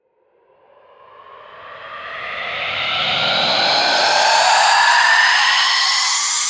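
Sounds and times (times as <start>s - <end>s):
riddim riser: 2.2s - 6.4s.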